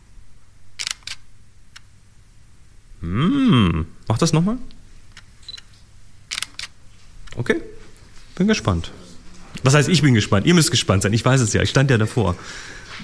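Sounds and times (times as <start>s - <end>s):
camera shutter clicks: 0.8s - 1.9s, 6.3s - 6.8s
speech: 3.0s - 4.8s, 7.4s - 7.8s, 8.4s - 9.0s, 9.6s - 13.0s.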